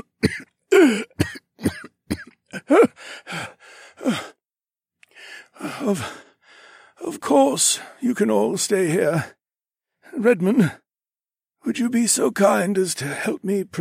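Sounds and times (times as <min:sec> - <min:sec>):
man coughing harshly and raspily: 0:00.0 - 0:03.0
speech: 0:00.3 - 0:01.1, 0:07.4 - 0:09.4, 0:10.2 - 0:10.8, 0:11.6 - 0:13.7
man's wheezy breaths and gasps: 0:00.7 - 0:01.2, 0:02.3 - 0:04.4, 0:05.0 - 0:07.0.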